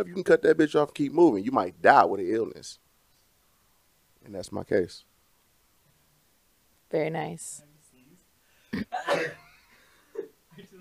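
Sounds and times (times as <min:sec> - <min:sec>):
speech: 0:00.0 - 0:02.8, 0:04.2 - 0:05.1, 0:06.9 - 0:07.7, 0:08.7 - 0:09.4
person sneezing: 0:08.7 - 0:09.5.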